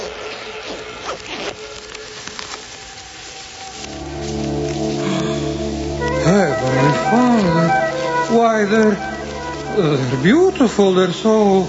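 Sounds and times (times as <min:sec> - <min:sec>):
zippers on clothing being fastened: 0:00.0 - 0:02.5
faint rustling: 0:00.0 - 0:11.6
speech: 0:08.6 - 0:09.1, 0:09.8 - 0:11.6.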